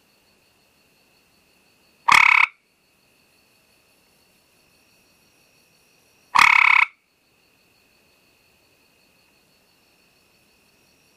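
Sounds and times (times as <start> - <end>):
gray treefrog Hyla versicolor calling with pulsed trills: 1.9 - 2.8, 6.2 - 7.3.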